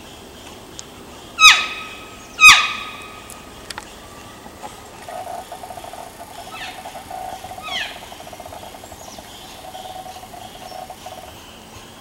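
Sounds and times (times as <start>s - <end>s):
elk calf seeking call: 1.4s - 3.0s, 5.0s - 11.3s.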